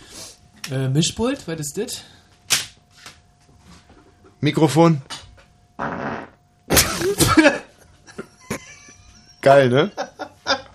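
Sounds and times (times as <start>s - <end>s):
speech: 0.7s - 2.2s, 4.4s - 5.1s, 9.5s - 10.0s
raspy sputtering fart: 5.8s - 7.4s
laughter: 7.0s - 10.7s.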